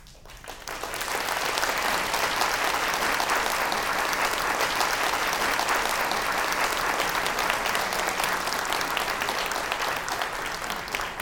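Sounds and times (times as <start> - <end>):
short hand clap: 0.0 - 11.2.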